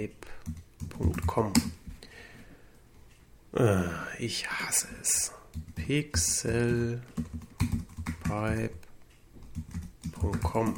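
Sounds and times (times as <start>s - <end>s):
speech: 0.0s - 1.8s, 3.6s - 7.7s, 8.3s - 8.8s, 10.2s - 10.7s
typing a web address on a computer keyboard: 0.4s - 1.8s, 5.5s - 8.8s, 9.4s - 10.7s.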